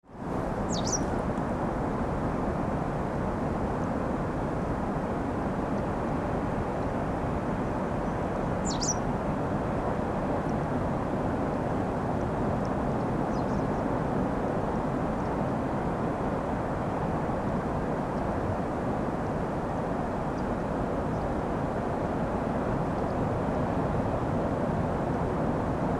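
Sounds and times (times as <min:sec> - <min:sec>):
sea: 0:00.0 - 0:25.9
bird: 0:00.6 - 0:01.1, 0:08.6 - 0:09.0, 0:13.3 - 0:13.6.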